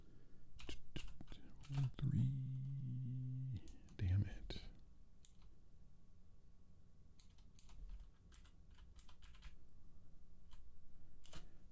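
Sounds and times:
steady low hum: 0:00.0 - 0:11.7
typing on a computer keyboard: 0:00.6 - 0:02.0, 0:05.2 - 0:05.5, 0:07.2 - 0:09.6, 0:11.2 - 0:11.5
speech: 0:01.7 - 0:02.5.

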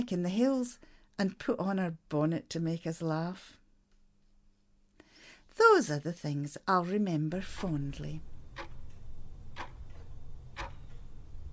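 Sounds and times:
speech: 0:00.0 - 0:03.6, 0:05.6 - 0:08.7
low continuous hum: 0:00.0 - 0:11.5
clock ticking: 0:07.4 - 0:11.5.

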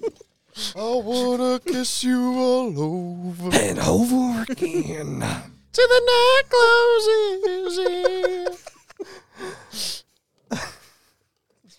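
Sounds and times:
laughter: 0:00.0 - 0:00.2, 0:03.8 - 0:05.5, 0:06.6 - 0:09.2
speech: 0:00.1 - 0:08.7
heavy close-miked breathing: 0:00.5 - 0:00.9, 0:09.0 - 0:10.1.

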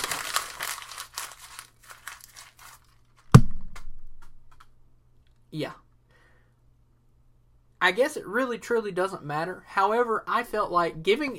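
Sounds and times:
sheet of paper being torn up: 0:00.0 - 0:02.9
sharp thump: 0:03.3 - 0:04.4
speech: 0:05.5 - 0:05.8, 0:07.8 - 0:11.3.

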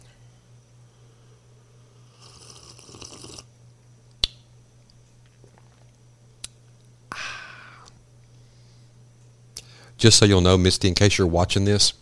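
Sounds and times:
low steady hum: 0:00.0 - 0:12.0
slurping sip of coffee from a mug: 0:02.1 - 0:03.5
speech: 0:10.0 - 0:12.0.

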